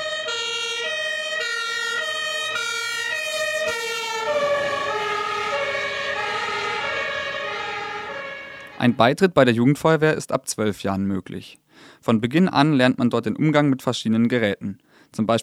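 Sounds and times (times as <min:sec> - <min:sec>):
fire engine two-tone siren: 0:00.0 - 0:09.1
speech: 0:08.8 - 0:15.4.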